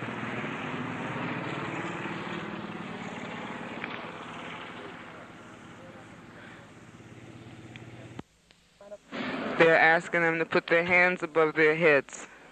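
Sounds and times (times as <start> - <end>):
helicopter flying overhead and circling: 0.0 - 8.2
speech: 9.6 - 12.3.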